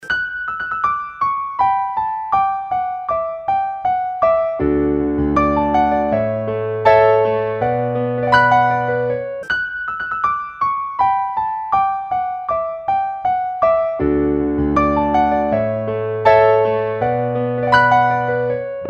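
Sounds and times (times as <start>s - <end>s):
classical piano music: 0.0s - 18.8s.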